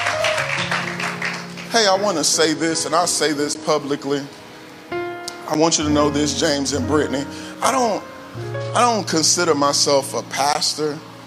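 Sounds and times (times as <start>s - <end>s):
audience clapping hands: 0.0s - 2.3s
speech: 1.8s - 4.4s, 5.5s - 11.1s
sustained organ-like tones: 2.2s - 11.2s.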